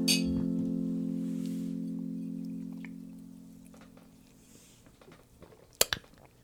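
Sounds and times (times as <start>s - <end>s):
bourbon glasses clinking in a toast: 0.1s - 0.6s
glass set down clatter: 0.1s - 0.6s
sipping and swallowing bourbon: 1.9s - 6.4s.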